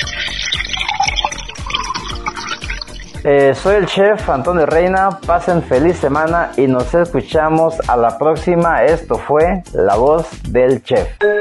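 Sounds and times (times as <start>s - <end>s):
tequila avocado margarita poured into a glass: 0.0s - 3.3s
speech: 3.2s - 11.3s.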